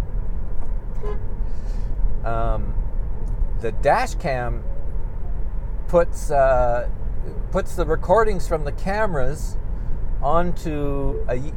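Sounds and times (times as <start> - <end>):
steady low rumble of vehicle noise: 0.0 - 11.5
car horn honk: 0.9 - 1.4
speech: 2.3 - 2.8, 3.6 - 4.7, 5.9 - 9.6, 10.2 - 11.5.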